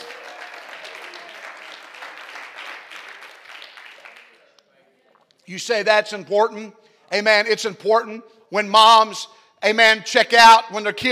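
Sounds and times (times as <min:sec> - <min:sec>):
audience clapping hands: 0:00.0 - 0:04.6
speech: 0:05.5 - 0:11.1.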